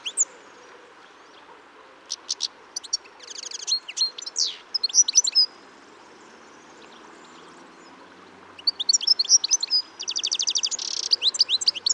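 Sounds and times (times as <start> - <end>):
European goldfinch Carduelis carduelis calls: 0.0 - 0.4, 1.0 - 5.6, 6.9 - 11.9.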